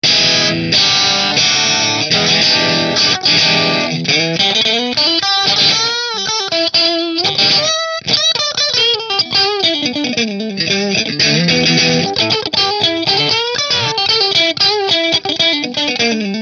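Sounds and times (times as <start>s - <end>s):
Tokai Strat guitar in pickup position 4 through Marshall amplifier: 0.0s - 16.4s.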